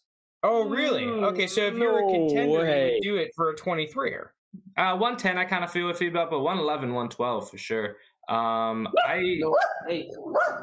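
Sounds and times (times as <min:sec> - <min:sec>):
speech: 0:00.5 - 0:10.6
dog yelping barks and whining: 0:09.0 - 0:10.6.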